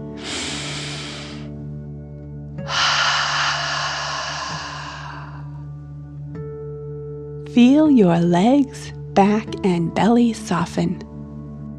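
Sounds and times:
deep relaxation breath in through the nose and out through the mouth: 0:00.0 - 0:01.7, 0:02.6 - 0:05.7
soft steady musical drone: 0:00.0 - 0:08.6
speech: 0:07.6 - 0:11.1.

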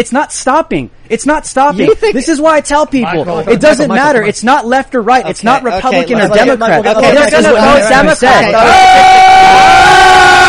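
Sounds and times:
speech: 0:00.0 - 0:10.4
several people shouting over each other: 0:07.0 - 0:10.4
sustained high yell: 0:08.4 - 0:10.4.

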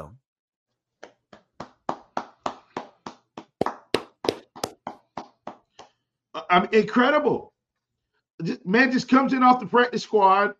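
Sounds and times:
hands clapping in a quick steady rhythm: 0:01.0 - 0:06.0
speech: 0:06.5 - 0:07.5, 0:08.4 - 0:10.5.

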